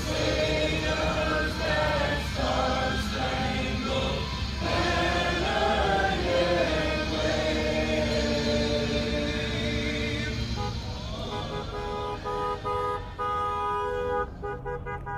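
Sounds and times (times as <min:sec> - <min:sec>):
car engines rumbling in a motorcade: 0:00.0 - 0:15.1
car horns honking in a motorcade of supporters' cars in New Braunfels: 0:10.2 - 0:15.1.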